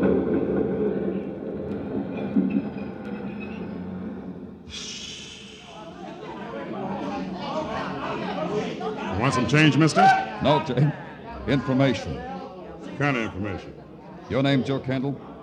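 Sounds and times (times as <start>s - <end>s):
murmur of crowd voices in a subway station: 0.0s - 15.4s
underground train brakes hissing and squealing: 4.7s - 6.0s
speech: 9.3s - 12.3s, 13.0s - 15.3s.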